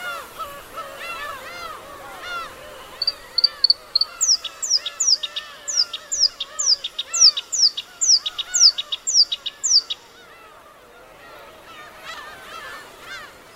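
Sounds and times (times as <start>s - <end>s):
other birds in grassland on Teuri Island Hokkaido Japan: 0.1s - 13.5s
black-browed reed warbler singing in grassland on Teuri Island Hokkaido Japan: 2.9s - 10.2s.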